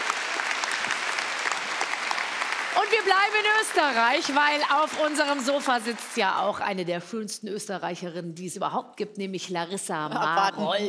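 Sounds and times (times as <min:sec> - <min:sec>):
studio audience applause on a television talk show: 0:00.0 - 0:06.7
speech: 0:02.8 - 0:10.8.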